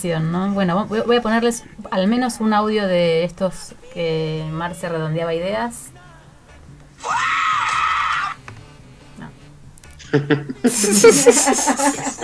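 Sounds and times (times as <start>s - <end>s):
speech: 0.0s - 5.9s, 10.1s - 12.2s
person screaming loud and high-pitched: 7.0s - 8.4s
laughter: 10.0s - 12.2s.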